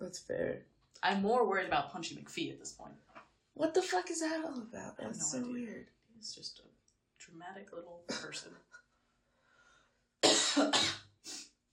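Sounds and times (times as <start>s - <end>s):
speech: 0.0s - 8.8s, 10.6s - 11.0s
harsh coughs: 10.2s - 11.1s.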